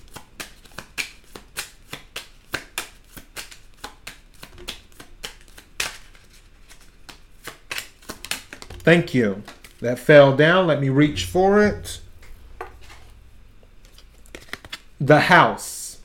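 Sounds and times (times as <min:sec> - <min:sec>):
deck of tarot cards being shuffled: 0:00.1 - 0:09.8
speech: 0:08.9 - 0:12.0, 0:15.1 - 0:15.7.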